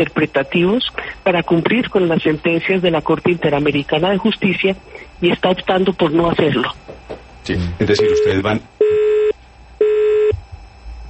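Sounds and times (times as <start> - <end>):
speech: 0.0 - 9.1
telephone busy tone after a call drops: 8.0 - 10.4.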